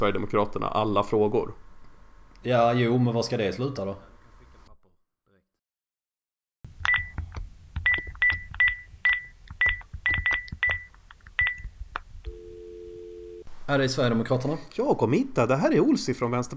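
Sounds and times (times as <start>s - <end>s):
speech: 0.0s - 1.6s, 2.4s - 4.1s, 13.7s - 16.5s
telephone keypad tones dialing a number: 6.8s - 7.2s, 7.8s - 13.5s.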